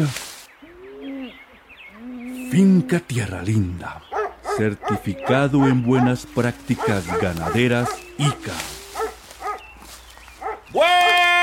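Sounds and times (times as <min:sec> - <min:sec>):
speech: 0:00.0 - 0:00.2, 0:02.5 - 0:08.8
dog yelping barks and howling: 0:04.1 - 0:09.8, 0:10.4 - 0:10.8.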